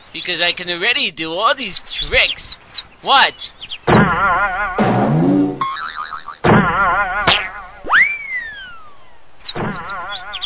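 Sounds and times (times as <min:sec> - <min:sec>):
speech: 0:00.1 - 0:04.8
cartoonish boing sound effects of a ball bouncing down a hill: 0:03.9 - 0:09.0
sliding whistle-like swoop: 0:07.9 - 0:08.9.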